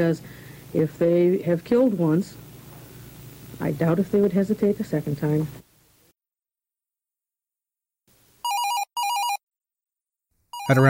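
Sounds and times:
speech: 0:00.0 - 0:02.5, 0:03.6 - 0:05.6, 0:10.7 - 0:10.8
telephone ringing in electronic warbling trills: 0:08.4 - 0:09.4, 0:10.5 - 0:10.8.

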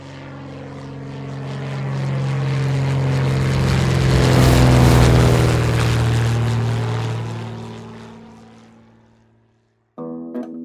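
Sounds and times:
propeller airplane engine droning: 0:00.0 - 0:09.4.

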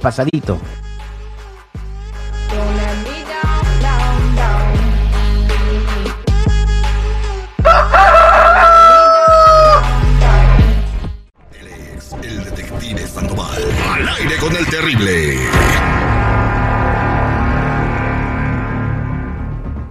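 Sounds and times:
speech: 0:00.0 - 0:00.8, 0:14.2 - 0:16.0
music: 0:00.0 - 0:19.9
rooster crowing: 0:07.6 - 0:10.0.

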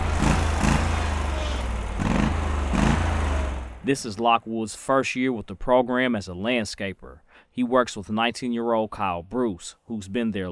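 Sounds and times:
lawnmower engine running with low droning rumble: 0:00.0 - 0:04.0
speech: 0:03.9 - 0:10.5.

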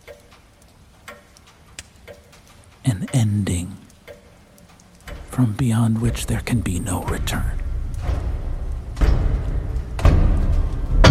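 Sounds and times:
clock ticking: 0:00.0 - 0:11.0
low hiss: 0:00.0 - 0:11.0
speech: 0:02.8 - 0:03.8, 0:05.4 - 0:07.6.

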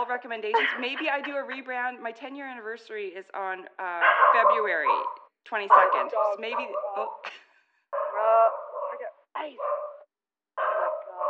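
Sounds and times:
laughter: 0:00.0 - 0:01.7, 0:05.7 - 0:07.5
speech: 0:00.0 - 0:07.4, 0:09.4 - 0:09.8
small dogs barking and yapping: 0:04.0 - 0:07.3, 0:08.0 - 0:10.0, 0:10.6 - 0:11.2.

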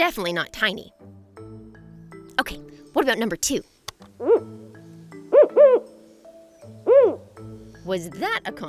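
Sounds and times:
speech: 0:00.0 - 0:01.1, 0:02.4 - 0:04.6, 0:07.9 - 0:08.6
Mexican spotted owl hooting: 0:04.2 - 0:07.8.

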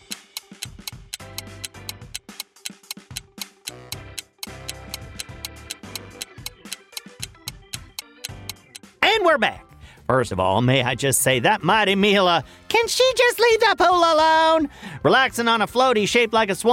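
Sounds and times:
tense pulsing music bed: 0:00.0 - 0:08.8
countdown timer ticking: 0:00.0 - 0:08.9
speech: 0:09.2 - 0:16.7.

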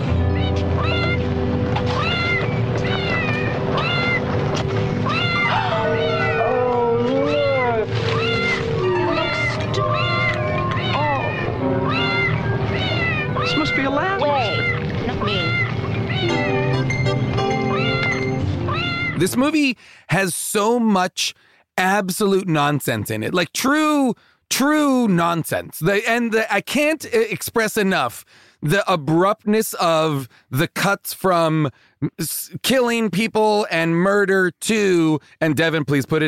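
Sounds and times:
music: 0:00.0 - 0:19.3
dubbed cat meowing montage from film: 0:00.3 - 0:01.2, 0:01.9 - 0:04.2, 0:05.0 - 0:17.0, 0:17.7 - 0:19.2
speech: 0:19.4 - 0:36.2.

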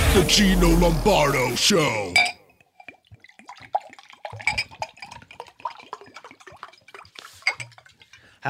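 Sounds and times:
speech: 0:00.2 - 0:02.4
water dripping and trickling: 0:02.2 - 0:08.4
small splashes: 0:02.6 - 0:08.4.

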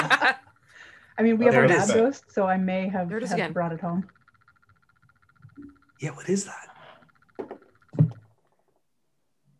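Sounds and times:
speech: 0:00.2 - 0:00.5, 0:01.2 - 0:04.2, 0:05.6 - 0:06.7
knuckles rapping on a wooden desk: 0:07.4 - 0:08.2.

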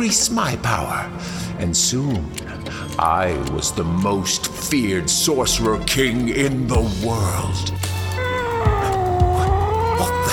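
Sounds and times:
speech: 0:00.0 - 0:08.0
cat in a bag wailing meow: 0:08.0 - 0:10.3.

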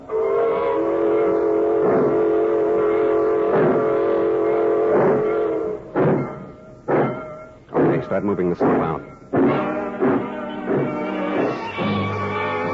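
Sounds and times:
train whistle in a long chord-like wail: 0:00.0 - 0:06.0, 0:09.3 - 0:12.7
freight train rumbling and chuffing getting underway: 0:00.0 - 0:12.7
speech: 0:08.1 - 0:09.2.

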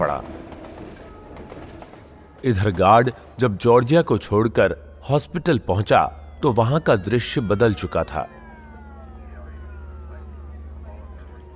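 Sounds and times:
police car siren wailing: 0:00.0 - 0:11.5
speech: 0:02.4 - 0:08.4
low engine rumble: 0:07.8 - 0:11.5.

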